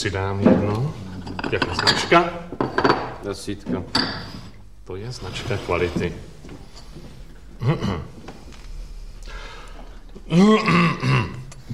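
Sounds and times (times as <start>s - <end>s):
speech: 0.0s - 4.3s, 4.9s - 6.3s, 7.6s - 8.2s, 10.3s - 11.3s
breathy noise: 4.0s - 11.7s
rough voiced coughing: 7.6s - 8.2s, 10.3s - 11.5s
throat clearing: 7.6s - 8.2s, 10.2s - 11.5s.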